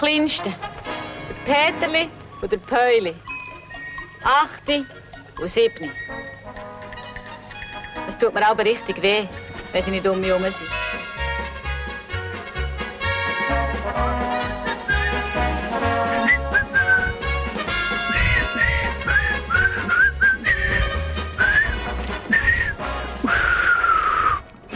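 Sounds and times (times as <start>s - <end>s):
speech: 0.0s - 0.9s, 1.5s - 3.3s, 4.2s - 6.2s, 8.1s - 10.9s
musical accompaniment: 0.2s - 24.0s
person whistling a melody: 14.8s - 17.4s, 18.1s - 24.5s.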